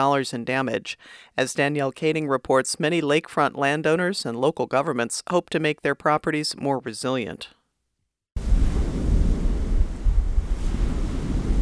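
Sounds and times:
speech: 0.0s - 7.6s
Lake Superior waves washing against a clay bluff on the south shore: 8.4s - 11.5s
gusts of wind buffeting the microphone: 8.4s - 11.5s.

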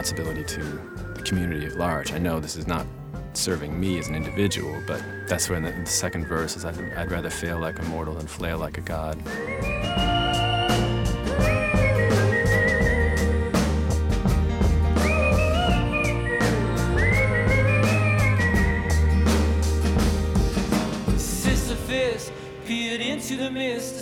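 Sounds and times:
speech: 0.0s - 10.0s
whistled melody with sliding wavering pitch: 0.0s - 23.3s
band backing of bass, drums and chords: 9.2s - 22.3s.

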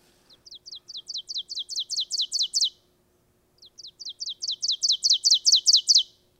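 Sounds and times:
ovenbird singing chanting phrases: 0.3s - 2.9s, 3.6s - 6.2s.

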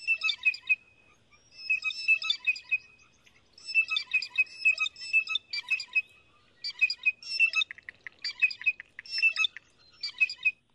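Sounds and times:
family group of blue jays giving high harsh calls: 0.0s - 10.6s
blue jays making rapid clicking sounds: 7.6s - 9.2s.

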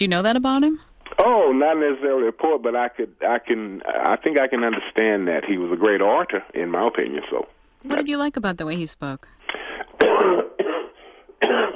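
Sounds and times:
speech: 0.0s - 10.5s, 11.4s - 11.7s
person coughing: 9.6s - 11.7s.

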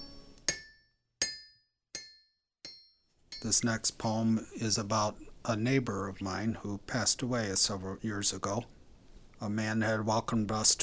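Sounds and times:
hammer striking a steel anvil: 0.0s - 3.6s
speech: 3.4s - 8.8s, 9.4s - 10.8s.

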